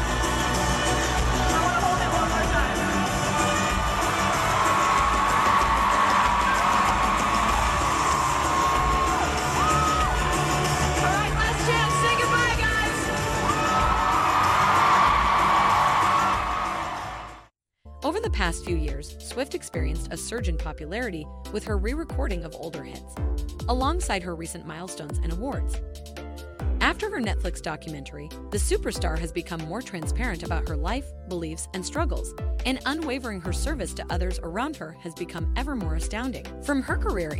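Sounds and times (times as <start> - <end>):
huge stadium crowd cheering and chanting at a pop concert: 0.0 - 17.5
speech: 18.5 - 26.1, 27.0 - 37.3.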